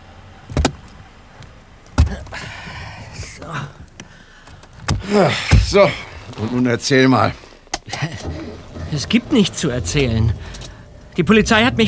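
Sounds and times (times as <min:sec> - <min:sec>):
car doors thudding shut: 0:00.0 - 0:11.8
rustling and shuffling of someone climbing into a car: 0:00.0 - 0:11.8
speech: 0:03.4 - 0:03.9, 0:05.1 - 0:08.0, 0:08.9 - 0:10.6, 0:11.2 - 0:11.8.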